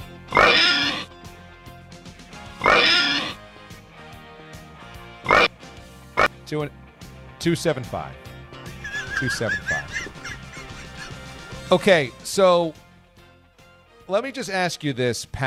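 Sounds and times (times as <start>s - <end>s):
pig oinks, squeals and grunts: 0.3s - 1.1s, 2.6s - 3.4s, 5.2s - 5.6s
speech: 6.5s - 8.2s, 9.2s - 9.8s, 11.7s - 12.8s, 14.1s - 15.4s
laughter: 8.7s - 11.8s.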